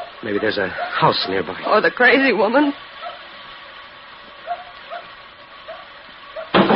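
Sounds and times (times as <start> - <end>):
little dog barking with short sharp yaps: 0.0 - 1.5, 3.0 - 3.3, 4.4 - 6.6
speech: 0.2 - 2.9.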